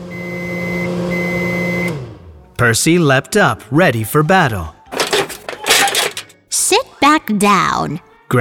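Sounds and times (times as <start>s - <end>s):
oven timer long high-pitched beeps: 0.1s - 2.0s
speech: 2.6s - 4.8s, 6.6s - 8.3s.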